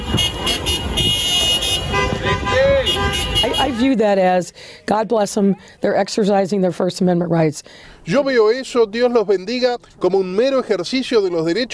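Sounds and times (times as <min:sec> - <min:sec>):
car horns honking in a teachers' protest caravan: 0:00.0 - 0:04.0
busy street noise: 0:00.0 - 0:11.7
speech: 0:03.7 - 0:11.7.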